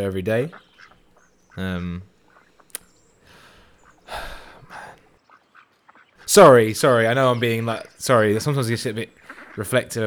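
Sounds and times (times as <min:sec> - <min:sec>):
speech: 0:00.0 - 0:00.7, 0:01.6 - 0:02.1, 0:06.3 - 0:10.0
duck quacking at a pond: 0:00.0 - 0:10.0
breathy rustling bursts: 0:03.2 - 0:05.2, 0:07.4 - 0:09.7.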